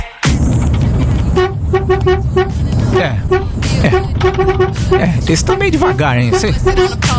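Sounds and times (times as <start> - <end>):
garbage truck engine rumbling: 0.3 - 7.1
garbage truck horn honking: 1.2 - 7.1
speech: 3.0 - 7.1.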